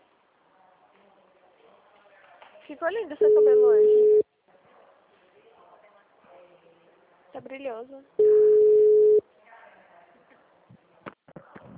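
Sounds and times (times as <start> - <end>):
speech: 2.7 - 4.1, 7.4 - 8.6
phone line tone after a dropped call: 3.2 - 4.2, 8.2 - 9.2.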